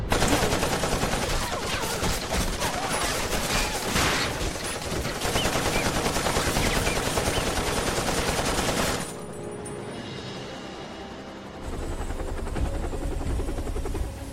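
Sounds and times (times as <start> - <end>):
rapid bursts of gunfire: 0.1 - 9.2
helicopter roaring: 4.8 - 14.3.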